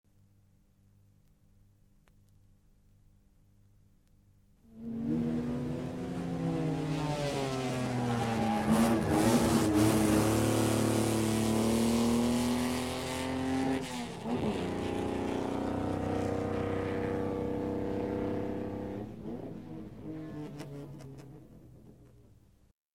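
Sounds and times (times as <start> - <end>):
racing car passing: 4.7 - 21.0.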